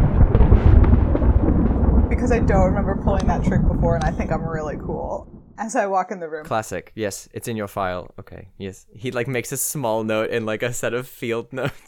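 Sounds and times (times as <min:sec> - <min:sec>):
deep continuous thunder rumble: 0:00.0 - 0:05.7
speech: 0:02.2 - 0:11.8
laughter: 0:11.5 - 0:11.8.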